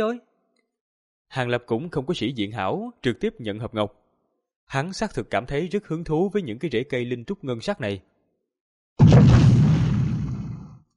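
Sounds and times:
speech: 0.0s - 0.3s, 1.3s - 4.0s, 4.7s - 8.1s
loud explosion sound effect: 9.0s - 10.8s.

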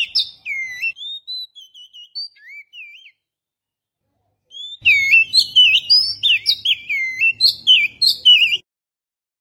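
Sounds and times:
Oriental magpie-robin song: 0.0s - 3.4s, 4.4s - 8.7s.

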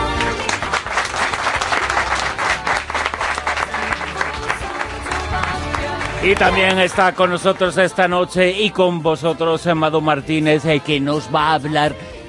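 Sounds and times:
audience applauding in a radio studio: 0.0s - 8.0s
speech: 6.2s - 12.2s.

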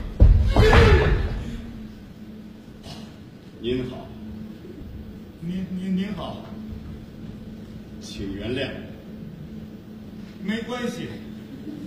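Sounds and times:
dull thump: 0.0s - 1.4s
door pushed open slowly on a stage: 0.2s - 1.4s
speech: 3.6s - 4.2s, 5.5s - 6.6s, 8.0s - 8.9s, 10.4s - 11.8s.

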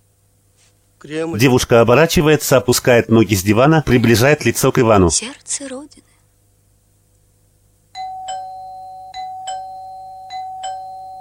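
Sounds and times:
low steady hum: 0.0s - 11.1s
speech: 1.0s - 6.1s
two-note doorbell ding-dong chime: 8.0s - 11.1s.

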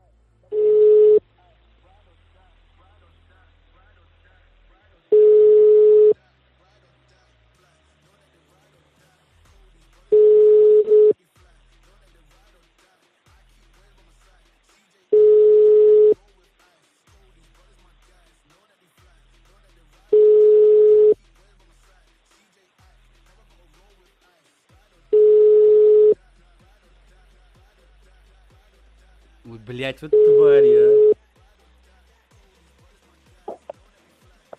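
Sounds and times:
telephone line tone while a number is redialed: 0.6s - 1.2s, 5.1s - 6.2s, 10.2s - 11.1s, 15.2s - 16.2s, 20.2s - 21.2s, 25.2s - 26.2s, 30.1s - 31.2s
speech: 29.8s - 31.2s.

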